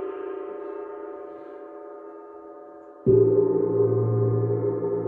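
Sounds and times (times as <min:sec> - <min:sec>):
gong struck and ringing: 0:03.1 - 0:05.0.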